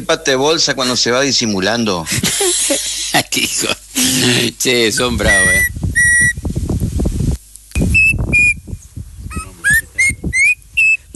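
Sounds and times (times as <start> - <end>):
speech: 0.0 - 5.7
bird call with repeated bright whistled notes: 5.0 - 6.4, 7.8 - 8.6, 9.3 - 11.1.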